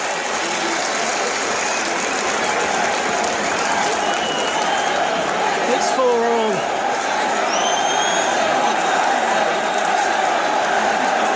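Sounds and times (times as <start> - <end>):
large crowd cheering and applauding after a penalty goal: 0.0 - 11.3.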